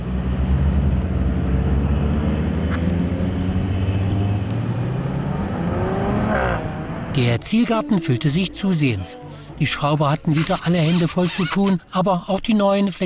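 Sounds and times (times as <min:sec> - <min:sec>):
car engine rumbling as it drives onto a closed-off race course in Vogtland: 0:00.0 - 0:11.9
speech: 0:07.2 - 0:13.0.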